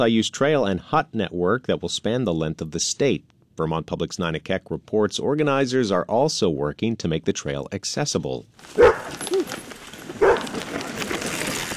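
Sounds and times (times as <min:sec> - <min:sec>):
speech: 0:00.0 - 0:09.3
steady outdoor hiss: 0:00.0 - 0:11.7
service dog barking outdoors: 0:08.7 - 0:09.5, 0:10.2 - 0:10.6.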